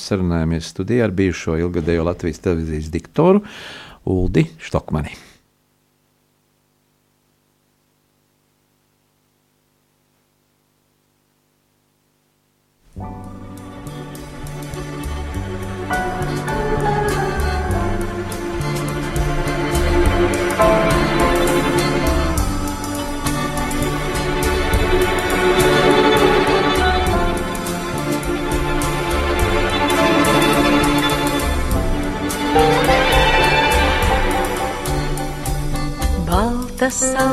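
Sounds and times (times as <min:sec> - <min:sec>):
speech: 0:00.0 - 0:05.3, 0:36.9 - 0:37.3
instrumental music with full harmonic instrumentation and driving rhythm: 0:12.9 - 0:37.3.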